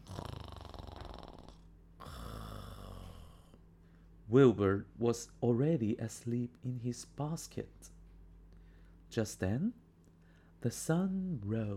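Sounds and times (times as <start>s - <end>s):
loud snoring: 0.0s - 3.6s
speech: 4.3s - 8.0s, 9.1s - 9.8s, 10.6s - 11.7s.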